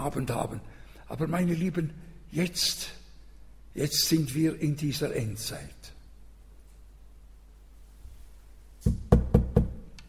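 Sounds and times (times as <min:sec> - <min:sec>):
speech: 0:00.0 - 0:03.0, 0:03.7 - 0:06.0, 0:08.8 - 0:09.1
firm knocks on a wooden door: 0:08.9 - 0:09.9.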